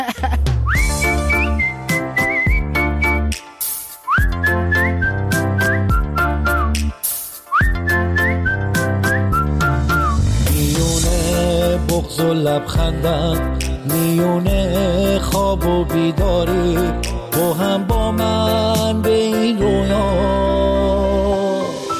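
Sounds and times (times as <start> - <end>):
full backing track with steady drums: 0.0 - 8.0, 8.6 - 14.7
whistled melody: 0.5 - 11.5, 21.4 - 21.9
speech: 12.4 - 21.4.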